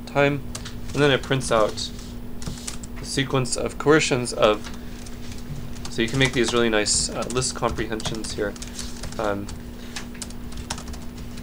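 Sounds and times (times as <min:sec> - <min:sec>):
steady electrical hum: 0:00.0 - 0:11.4
speech: 0:00.1 - 0:02.0, 0:03.0 - 0:04.8, 0:06.0 - 0:09.6
typing on a computer keyboard: 0:05.8 - 0:11.4.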